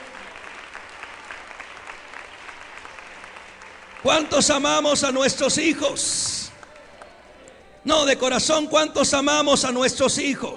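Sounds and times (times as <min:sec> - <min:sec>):
room full of people applauding: 0:00.0 - 0:07.8
speech: 0:04.0 - 0:06.4, 0:07.8 - 0:10.5.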